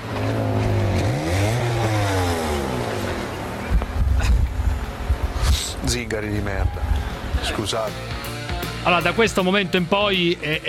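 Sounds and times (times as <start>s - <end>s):
car or moped engine passing by: 0.0s - 5.6s
speech: 5.9s - 10.6s.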